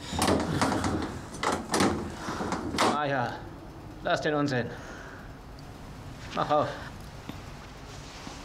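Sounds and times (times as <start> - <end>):
locked door rattling in its frame: 0.0 - 3.0
speech: 3.0 - 4.9, 6.3 - 6.8.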